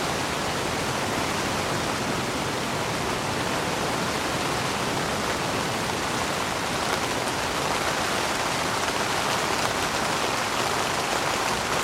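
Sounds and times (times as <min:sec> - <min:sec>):
gentle rain pattering on a tent canopy: 0:00.0 - 0:11.8.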